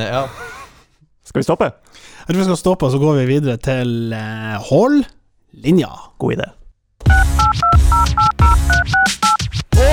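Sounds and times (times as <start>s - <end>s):
speech: 0.0s - 0.4s, 1.3s - 7.4s
telephone touch-tone dialing beeps: 7.1s - 9.4s.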